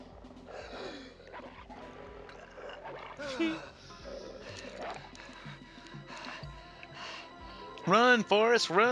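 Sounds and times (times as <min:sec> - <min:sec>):
dogs snarling and growling aggressively: 0:00.0 - 0:05.6
speech: 0:03.2 - 0:03.7, 0:07.9 - 0:08.9.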